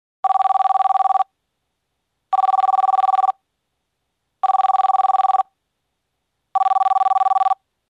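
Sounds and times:
telephone ringing: 0.2 - 1.3, 2.3 - 3.4, 4.4 - 5.5, 6.6 - 7.6.

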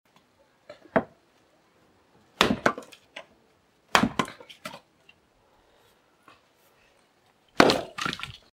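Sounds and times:
chopping firewood: 2.4 - 3.3, 3.9 - 4.8, 7.6 - 8.2.

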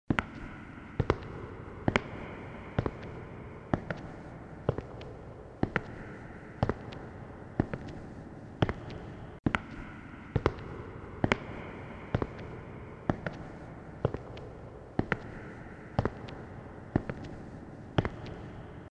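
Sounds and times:
footsteps with echo: 0.1 - 18.9.

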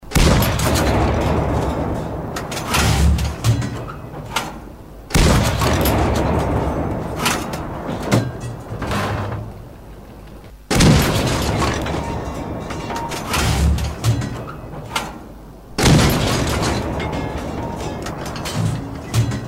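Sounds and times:
shots of a 76mm gun: 0.0 - 9.3, 10.7 - 15.2, 15.8 - 19.4.

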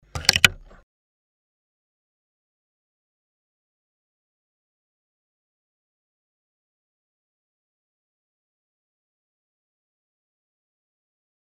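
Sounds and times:
sewing machine presser foot lifting: 0.1 - 0.8.

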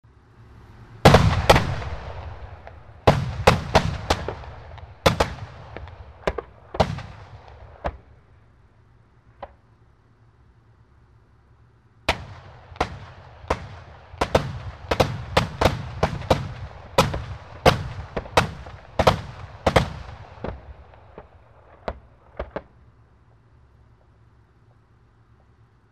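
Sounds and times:
tank cannon firing: 1.0 - 8.3, 12.1 - 22.8.

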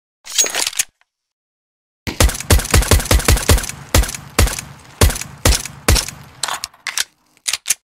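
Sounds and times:
USP-S silenced pistol shot in a video game: 2.1 - 6.4.

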